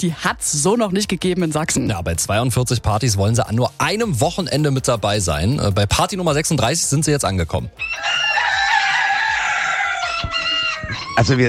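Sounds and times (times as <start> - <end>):
speech: 0.0 - 8.3, 11.2 - 11.4
roosters crowing at a crowing contest: 7.8 - 11.4.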